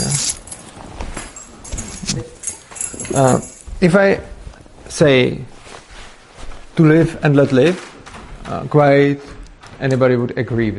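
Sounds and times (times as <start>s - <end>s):
bunch of keys jangling in a hand: 0.0s - 4.0s
speech: 3.1s - 4.3s, 4.9s - 5.5s, 6.8s - 7.9s, 8.5s - 10.7s.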